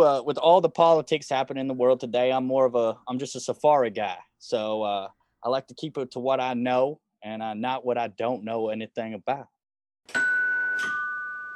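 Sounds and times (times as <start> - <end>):
speech: 0.0 - 10.3
two-note doorbell chime: 10.1 - 11.5.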